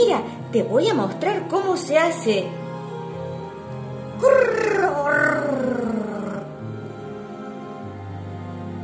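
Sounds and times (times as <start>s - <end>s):
speech: 0.0s - 2.6s, 4.2s - 5.8s
loud scary roaring shout: 4.2s - 6.5s.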